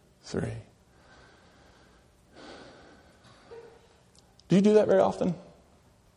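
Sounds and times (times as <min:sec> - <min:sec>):
speech: 0:00.3 - 0:00.7, 0:04.5 - 0:05.4
group of people drawing a deep breath in unison: 0:00.9 - 0:04.0.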